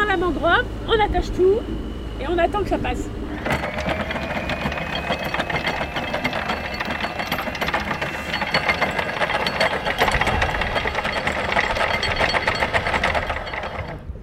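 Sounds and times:
steady mechanical rumble: 0:00.0 - 0:14.2
speech: 0:00.2 - 0:03.6
boat anchor chain running out in metallic clatter: 0:03.4 - 0:14.2.

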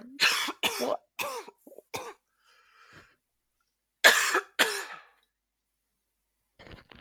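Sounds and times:
loud fit of harsh coughs: 0:00.2 - 0:02.2, 0:04.0 - 0:05.1
speech: 0:00.8 - 0:01.0
faint breathing: 0:02.4 - 0:03.2.

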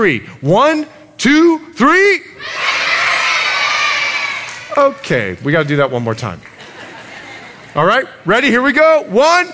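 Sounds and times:
speech: 0:00.0 - 0:02.8, 0:04.8 - 0:06.5, 0:07.7 - 0:09.5
large group of children screaming and cheering together: 0:02.4 - 0:04.6
laughter: 0:06.4 - 0:08.1.

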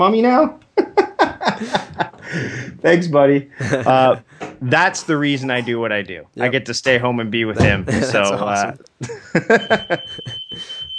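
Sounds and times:
speech: 0:00.0 - 0:00.6, 0:01.5 - 0:10.9
laughter: 0:00.8 - 0:02.8, 0:03.5 - 0:04.3, 0:07.6 - 0:10.8
smoke alarm set off at home: 0:09.4 - 0:10.9.

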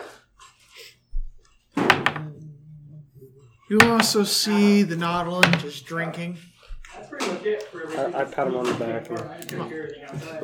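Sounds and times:
chair being shaken vigorously: 0:01.3 - 0:02.4, 0:03.7 - 0:04.4, 0:05.2 - 0:05.9
speech: 0:03.7 - 0:06.5, 0:07.4 - 0:10.4.

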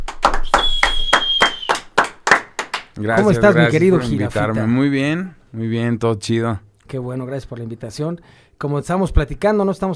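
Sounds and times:
hands clapping: 0:00.0 - 0:03.3
thin high whistle tone: 0:00.4 - 0:01.8
speech: 0:03.0 - 0:09.9.

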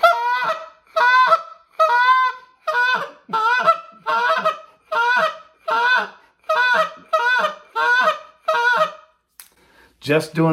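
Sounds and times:
goose call sounding raspy spit moan notes for calling geese: 0:00.0 - 0:09.2
speech: 0:10.1 - 0:10.5.

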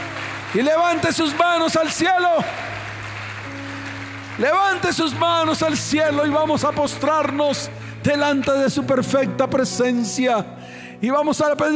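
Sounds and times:
audience applauding: 0:00.0 - 0:06.5
speech: 0:00.5 - 0:02.8, 0:04.4 - 0:11.7.

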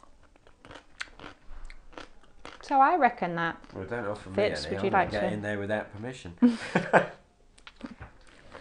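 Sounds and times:
person chewing quince preserve: 0:00.0 - 0:02.7, 0:03.6 - 0:03.9, 0:07.6 - 0:08.5
speech: 0:02.7 - 0:07.2
laughter: 0:06.4 - 0:07.2.

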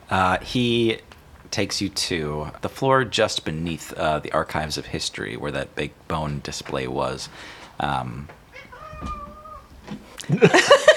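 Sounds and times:
speech: 0:00.1 - 0:08.4, 0:09.0 - 0:09.3, 0:09.9 - 0:10.9
cat meowing in a library: 0:08.5 - 0:09.8
laughter: 0:10.2 - 0:10.9.

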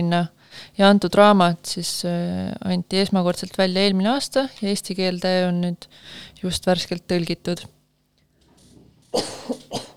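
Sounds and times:
speech: 0:00.0 - 0:07.8, 0:09.1 - 0:09.9
soft breathy sounds: 0:00.4 - 0:00.8, 0:05.8 - 0:06.4
coughing: 0:09.1 - 0:09.9.

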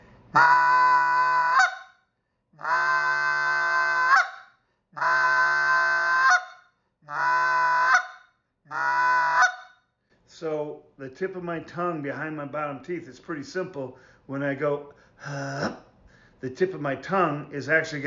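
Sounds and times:
goose call blown by a hand caller imitating goose honking: 0:00.4 - 0:01.9, 0:02.6 - 0:04.4, 0:05.0 - 0:06.5, 0:07.1 - 0:09.7
speech: 0:11.1 - 0:15.8, 0:16.4 - 0:18.0.

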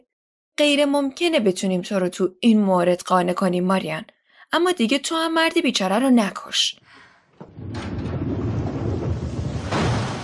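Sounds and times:
speech: 0:00.6 - 0:08.0
deep rolling rumble of thunder: 0:07.4 - 0:10.2
heavy rainstorm rain hiss: 0:07.6 - 0:10.2.

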